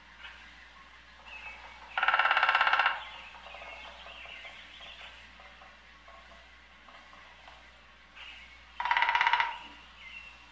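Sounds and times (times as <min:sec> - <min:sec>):
woodpecker drumming: 0:01.2 - 0:07.6, 0:08.7 - 0:09.8.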